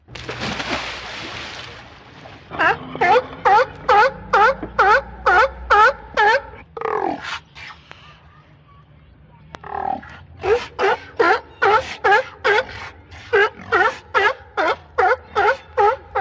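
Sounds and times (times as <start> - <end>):
water splashing: 0.0 - 4.2
sea lions barking: 2.5 - 7.5, 9.6 - 16.2.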